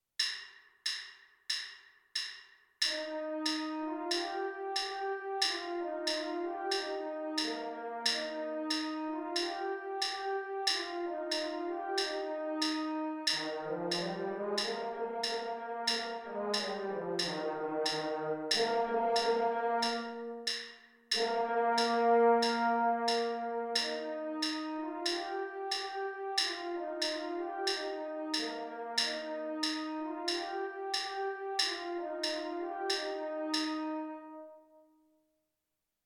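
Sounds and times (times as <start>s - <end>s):
french horn melody: 2.9s - 20.5s, 21.2s - 34.8s.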